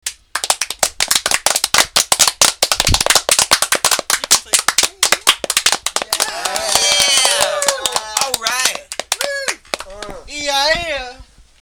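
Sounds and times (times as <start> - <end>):
people clapping: 0.0 - 11.0
people cheering hurray: 4.4 - 10.6.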